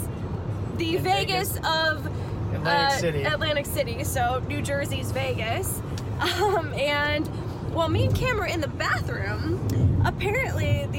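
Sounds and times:
engine and road drone inside a moving car: 0:00.0 - 0:10.9
speech: 0:00.8 - 0:10.9.

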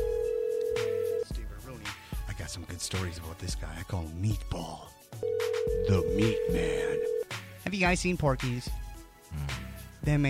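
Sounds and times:
long steady phone line ringback tone: 0:00.0 - 0:01.3, 0:05.2 - 0:07.2
speech: 0:02.5 - 0:10.2.

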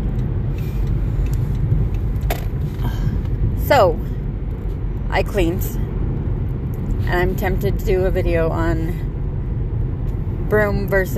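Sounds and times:
car cruising on a freeway with road rumble and tire roar: 0:00.0 - 0:11.1
speech: 0:03.7 - 0:04.1, 0:05.1 - 0:05.8, 0:07.1 - 0:09.1, 0:10.5 - 0:11.1.

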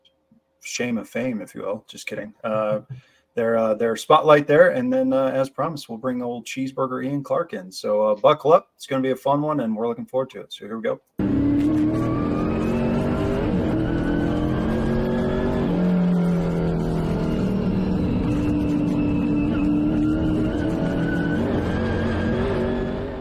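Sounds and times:
speech: 0:00.7 - 0:11.1
race car engines roaring and revving at a race: 0:11.2 - 0:23.1.

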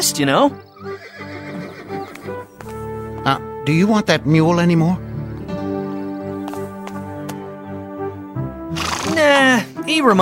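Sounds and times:
speech: 0:00.0 - 0:01.0, 0:03.2 - 0:05.1, 0:09.9 - 0:10.1
horse neighing: 0:00.6 - 0:02.4, 0:08.7 - 0:09.4
horse hooves clopping: 0:00.6 - 0:03.4, 0:05.3 - 0:07.5.

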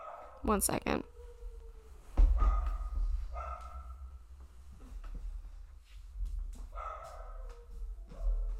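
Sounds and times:
dog barking: 0:00.0 - 0:00.4, 0:02.3 - 0:04.2, 0:06.7 - 0:08.5
speech: 0:00.4 - 0:01.1.

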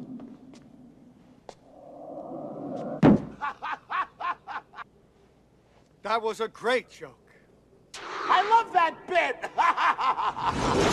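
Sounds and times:
head slamming into a door: 0:03.0 - 0:03.4
laughter: 0:03.4 - 0:04.9, 0:09.3 - 0:10.9
speech: 0:06.1 - 0:07.2, 0:08.4 - 0:09.4, 0:10.1 - 0:10.9.

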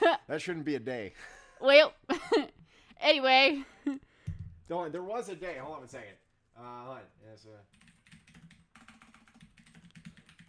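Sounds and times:
speech: 0:00.3 - 0:04.1, 0:04.7 - 0:07.8
typing clicks on a computer keyboard: 0:07.7 - 0:10.4.

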